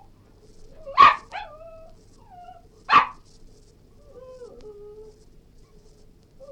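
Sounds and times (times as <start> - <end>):
Cairn terrier whining: 0.7 - 3.2, 4.0 - 5.2
Cairn terrier barking: 0.9 - 1.6, 2.9 - 3.3.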